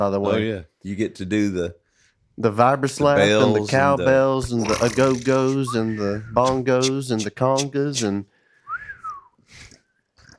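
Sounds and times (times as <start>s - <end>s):
speech: 0.0s - 1.8s, 2.4s - 8.3s
short breathy whistle bursts: 8.5s - 9.9s
whistle blowing a rising and falling tone: 8.7s - 9.3s.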